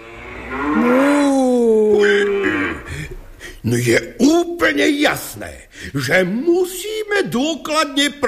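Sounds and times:
cow mooing: 0:00.0 - 0:03.0
speech: 0:03.6 - 0:08.2.

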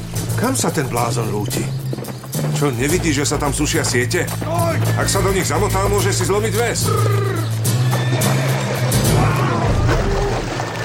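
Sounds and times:
speech: 0:00.4 - 0:07.6
horse whinnying as its rider falls: 0:04.4 - 0:10.5.

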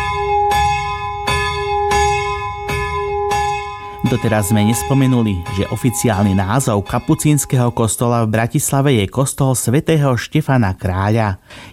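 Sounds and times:
church bell rung by hand with a rope before mass: 0:00.0 - 0:08.9
speech: 0:04.1 - 0:11.7.

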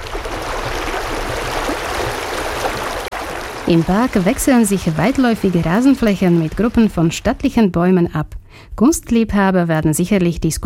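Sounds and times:
brook flowing through a spa park: 0:00.0 - 0:07.2
speech: 0:03.7 - 0:10.6.

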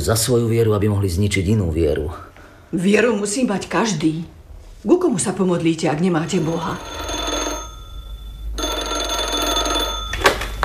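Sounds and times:
speech: 0:00.0 - 0:07.1
telephone bell ringing: 0:06.2 - 0:10.6.

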